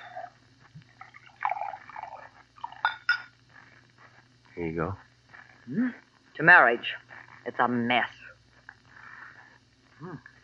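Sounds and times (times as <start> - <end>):
low steady hum: 0.0 - 10.4
bourbon pouring into a glass: 1.0 - 3.3
glass clinks: 2.7 - 3.3
speech: 4.6 - 8.2.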